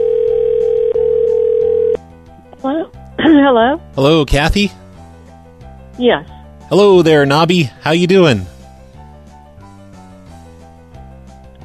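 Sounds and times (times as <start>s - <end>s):
loud telephone dial tone after caller hangs up: 0.0s - 2.0s
speech: 3.4s - 4.8s, 6.0s - 8.5s.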